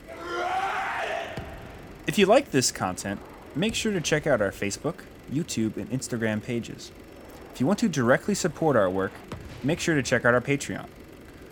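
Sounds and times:
man screaming in a movie clip: 0:00.0 - 0:01.4
speech: 0:02.1 - 0:07.0, 0:07.6 - 0:11.0.

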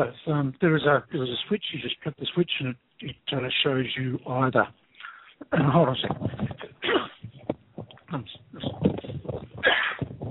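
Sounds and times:
speech: 0:00.0 - 0:04.8, 0:05.4 - 0:07.0, 0:08.1 - 0:09.0
person sneezing: 0:06.7 - 0:07.3, 0:09.6 - 0:10.0.

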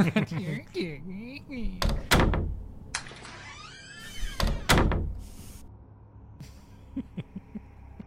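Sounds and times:
people laughing: 0:00.0 - 0:01.0, 0:06.7 - 0:08.0
people talking: 0:00.0 - 0:02.0
door opening and shutting: 0:01.6 - 0:05.6.

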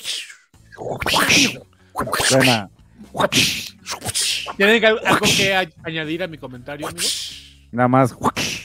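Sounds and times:
voice imitating a whip crack: 0:00.0 - 0:05.6, 0:06.8 - 0:07.4, 0:08.1 - 0:08.6
speech: 0:00.8 - 0:08.5.

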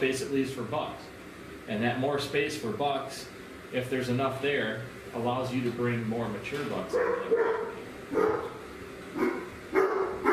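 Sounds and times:
speech: 0:00.0 - 0:08.5
male pet dog barking: 0:06.9 - 0:08.6, 0:09.2 - 0:10.3.

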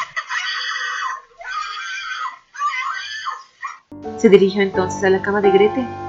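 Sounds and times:
boy screaming and protesting: 0:00.0 - 0:03.9
speech: 0:04.2 - 0:06.0.

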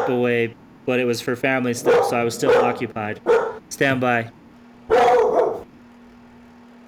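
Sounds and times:
dog barking: 0:00.0 - 0:00.2, 0:01.8 - 0:03.7, 0:04.9 - 0:05.7
speech: 0:00.0 - 0:05.0
hum: 0:00.0 - 0:06.8.

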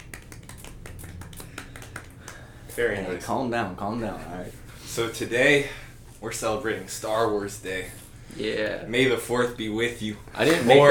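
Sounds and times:
soft polite golf clap: 0:00.0 - 0:03.0
speech: 0:02.8 - 0:10.8.

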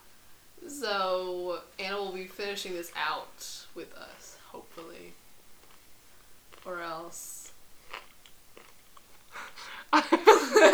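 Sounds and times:
speech: 0:00.7 - 0:05.2, 0:06.6 - 0:07.3
person chewing a small bagel: 0:05.4 - 0:06.8, 0:07.4 - 0:10.0
wet crunching and munching: 0:05.4 - 0:09.8
laughter: 0:10.0 - 0:10.7.

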